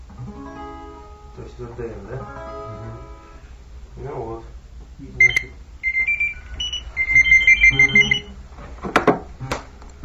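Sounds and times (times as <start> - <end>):
speech: 1.4 - 3.1, 4.0 - 5.6
telephone ringing with high electronic warbling ringtone: 5.2 - 8.4.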